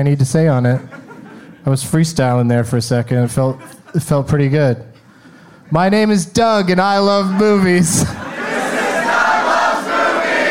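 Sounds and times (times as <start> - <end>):
speech: 0.0 - 1.0, 1.6 - 4.9, 5.7 - 8.3
laughter: 0.7 - 1.7, 3.2 - 4.3, 6.9 - 9.7
live audience shouting loudly together in St. Louis, Missouri: 8.1 - 10.5.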